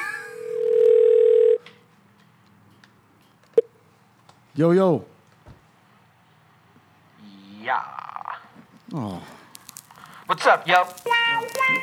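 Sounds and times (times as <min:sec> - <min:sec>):
telephone dial tone: 0:00.4 - 0:01.6
speech: 0:04.6 - 0:05.1, 0:09.0 - 0:09.4, 0:10.3 - 0:11.8.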